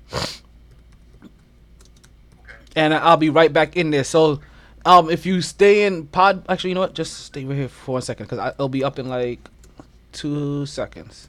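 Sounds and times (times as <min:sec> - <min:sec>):
low steady hum: 0:00.0 - 0:11.2
soft irregular typing on a computer keyboard: 0:00.7 - 0:02.5
speech: 0:02.8 - 0:11.2.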